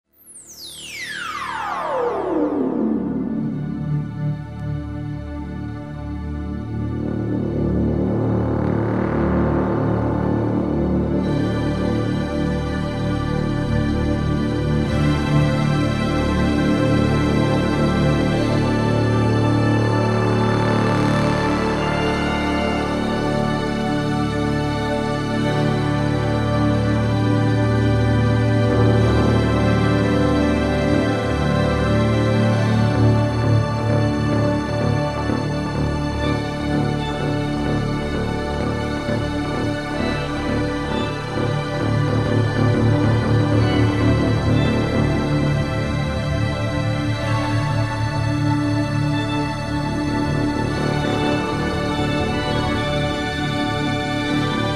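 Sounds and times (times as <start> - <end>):
organ: 0.2 - 54.7
strings: 0.2 - 54.7
Moog synthesizer bass: 1.3 - 54.7.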